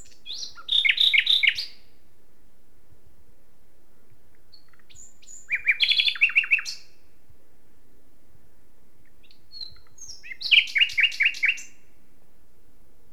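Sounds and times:
common nightingale Luscinia megarhynchos singing: 0.0 - 1.9, 4.3 - 7.0, 9.0 - 12.0.

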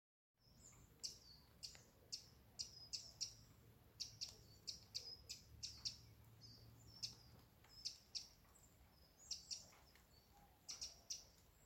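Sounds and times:
Eurasian wren Troglodytes troglodytes calls: 0.4 - 11.6.

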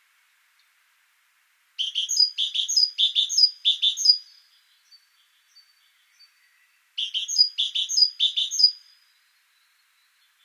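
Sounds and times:
Parus major great tit giving harsh buzzy double-note calls: 1.8 - 4.2, 7.0 - 8.8.

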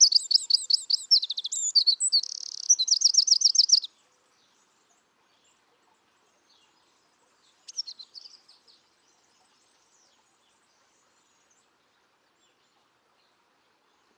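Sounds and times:
Eurasian wren Troglodytes troglodytes singing: 0.0 - 3.9, 7.5 - 10.2.

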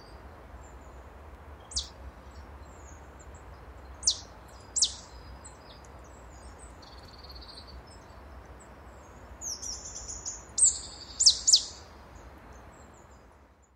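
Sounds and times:
faint background hiss: 0.0 - 13.7
marsh tit Poecile palustris calls: 4.0 - 5.1, 9.5 - 11.8.

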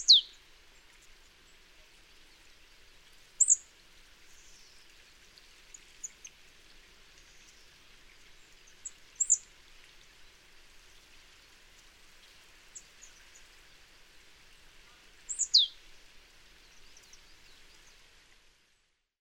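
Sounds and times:
marsh tit Poecile palustris calls: 0.0 - 0.2, 15.3 - 15.7
background hiss: 0.0 - 19.1.

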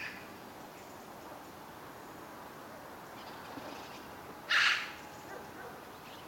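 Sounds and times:
quiet background noise: 0.0 - 6.2
Eurasian magpie Pica pica harsh rasping call: 4.5 - 5.0.

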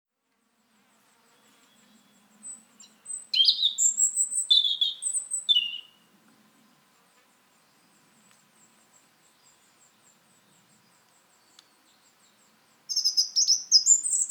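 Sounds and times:
European robin delivering high sweet warbled phrases: 3.3 - 5.9, 12.9 - 14.2.

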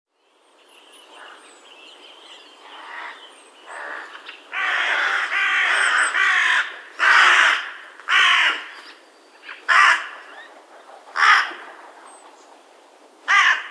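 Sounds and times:
carrion crow Corvus corone cawing: 2.7 - 8.7, 9.7 - 10.3, 11.2 - 11.7, 13.3 - 13.6.

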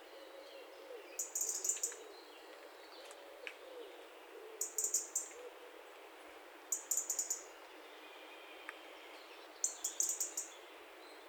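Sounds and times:
quiet background noise: 0.0 - 11.2
European robin calls of rapid thin high clicks: 1.2 - 2.1, 4.6 - 5.5, 6.7 - 7.5, 9.6 - 10.5.

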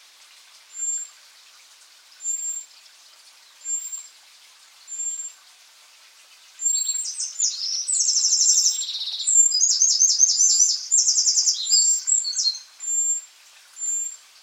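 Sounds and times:
Eurasian wren song, Troglodytes troglodytes: 0.7 - 1.1, 2.2 - 2.7, 3.5 - 4.1, 4.8 - 5.4, 6.3 - 14.2
thin calls of Eurasian wren: 0.7 - 1.2, 2.2 - 4.2, 4.8 - 5.4, 6.3 - 14.2.

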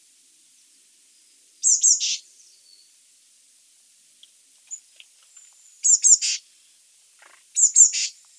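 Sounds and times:
Eurasian blue tit Cyanistes caeruleus calls: 1.6 - 2.2, 5.8 - 6.4, 7.4 - 8.2.

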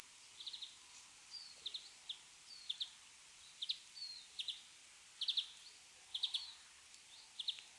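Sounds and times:
constant high hiss: 0.0 - 7.7
European greenfinch Chloris chloris giving bright twittering chirps: 0.4 - 7.7.

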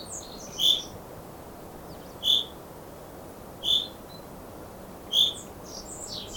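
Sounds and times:
Common chaffinch Fringilla coelebs calls: 0.0 - 0.9, 1.9 - 2.6, 3.6 - 4.2, 5.1 - 6.3.

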